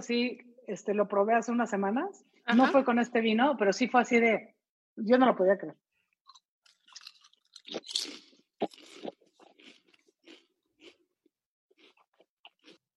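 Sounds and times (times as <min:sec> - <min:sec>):
speech: 0:00.0 - 0:05.8
crunching and chewing of adobo-seasoned potatoes with vinegar and onion: 0:06.2 - 0:12.9.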